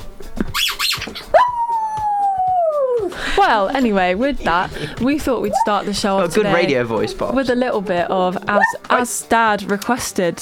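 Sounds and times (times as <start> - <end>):
pet dog yipping, whining and howling: 1.2 - 3.2, 5.4 - 5.9, 8.5 - 9.1
laughter: 3.0 - 9.1
speech: 3.4 - 10.4.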